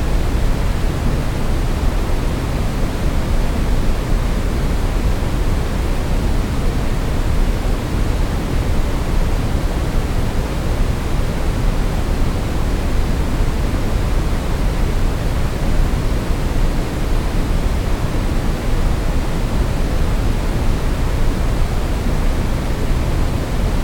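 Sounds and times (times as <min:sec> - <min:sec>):
brown noise: 0:00.0 - 0:23.8.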